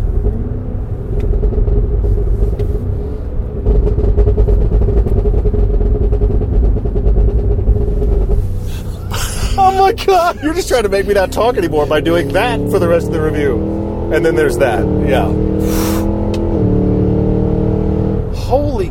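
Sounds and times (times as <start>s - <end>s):
high-powered car engine revving while downshifting through the gears: 0.0s - 18.8s
speech: 10.2s - 15.8s.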